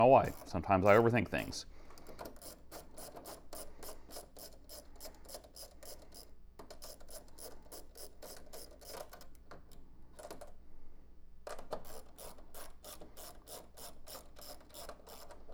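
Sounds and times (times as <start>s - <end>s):
speech: 0.0s - 1.8s
socket set ratchet wrench clicking while undoing bolts: 2.1s - 9.3s, 11.8s - 15.4s.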